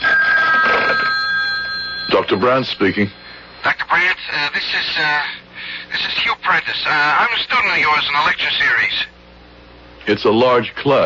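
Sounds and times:
telephone ringing with electronic trill during call from public phone: 0:00.0 - 0:05.0
speech: 0:02.2 - 0:03.2, 0:03.9 - 0:09.1, 0:10.1 - 0:11.0.

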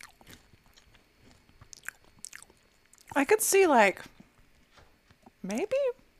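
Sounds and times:
chewing a chip: 0:00.0 - 0:03.2
crunching a chip: 0:00.0 - 0:03.2
speech: 0:03.2 - 0:04.2, 0:05.5 - 0:06.0.

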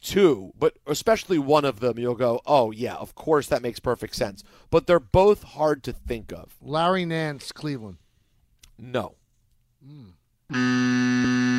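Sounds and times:
speech: 0:00.0 - 0:08.0, 0:08.8 - 0:09.2, 0:09.8 - 0:11.5
quiz-game buzzer blaring: 0:10.5 - 0:11.5.

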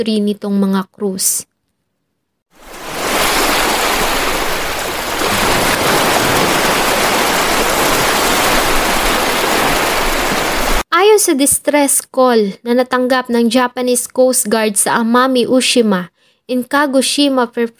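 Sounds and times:
speech: 0:00.0 - 0:01.5, 0:11.2 - 0:17.7
large ocean waves crashing: 0:02.5 - 0:10.8.

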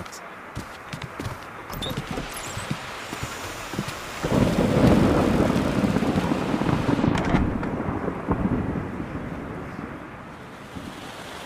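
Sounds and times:
gusting wind in a thunderstorm: 0:00.0 - 0:11.4
steady rain in a thunderstorm: 0:00.0 - 0:11.4
deep rumble of thunder: 0:04.2 - 0:10.9.

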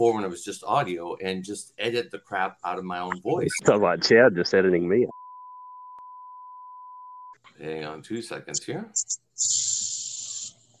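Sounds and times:
speech: 0:00.0 - 0:05.2, 0:07.6 - 0:09.8
cicadas buzzing: 0:09.0 - 0:10.6.

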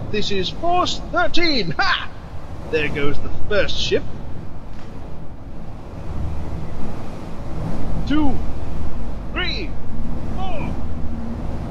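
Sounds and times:
churning sea water: 0:00.0 - 0:11.6
strong blustery wind blowing over ocean waves: 0:00.0 - 0:11.6
speech: 0:00.1 - 0:02.1, 0:02.7 - 0:04.2, 0:08.1 - 0:08.6.

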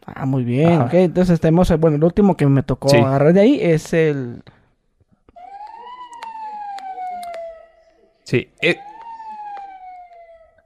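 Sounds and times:
speech: 0:00.2 - 0:04.6, 0:08.3 - 0:08.9
ambulance siren search tone wailing: 0:05.3 - 0:10.6
sharp clicks: 0:05.6 - 0:07.5.

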